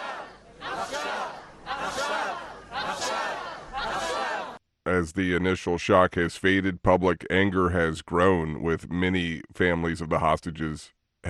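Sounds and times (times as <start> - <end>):
large crowd chanting a single shouted word in unison at a rally: 0.0 - 4.6
speech: 4.9 - 11.2.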